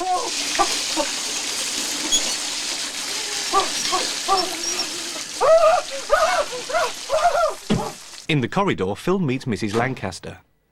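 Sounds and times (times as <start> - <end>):
shower running cold water: 0.0 - 8.3
short high voiced yelps: 5.4 - 8.0
speech: 8.3 - 10.5.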